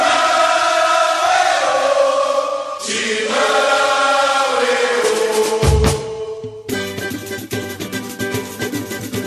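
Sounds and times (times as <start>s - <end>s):
chorus of voices singing a samba-enredo: 0.0s - 6.7s
dense driving samba percussion: 4.8s - 9.2s.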